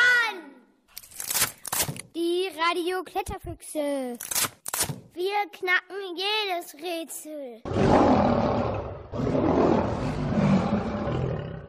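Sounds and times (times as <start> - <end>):
speech: 2.2 - 4.5, 5.2 - 8.6
lion roaring: 7.7 - 11.6.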